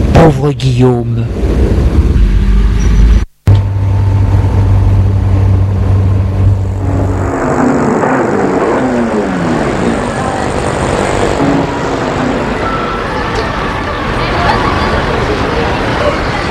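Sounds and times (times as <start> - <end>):
car engine rumble and road noise while driving: 0.0 - 16.4
speech: 0.2 - 2.0
murmur of mothers and children outside a kindergarten: 9.5 - 16.4.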